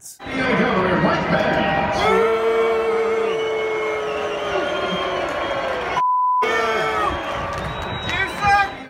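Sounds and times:
large crowd booing and angrily chanting: 0.2 - 8.8.

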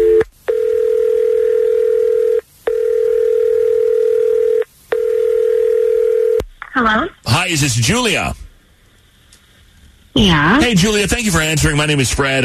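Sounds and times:
telephone dial tone before a call is placed: 0.0 - 6.4
speech: 7.5 - 8.3, 10.2 - 12.4.

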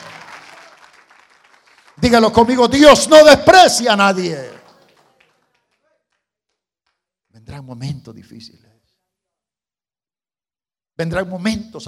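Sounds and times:
audience applauding: 0.0 - 7.1
speech: 2.0 - 4.6, 8.1 - 8.8, 11.0 - 11.8.

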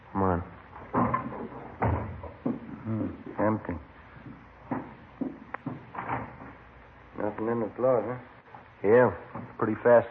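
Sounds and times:
wooden door creaking and thudding open: 0.8 - 2.7, 5.6 - 6.6
knocking impacts: 0.8 - 2.8, 4.2 - 6.7
speech: 3.5 - 3.9, 7.6 - 10.0.

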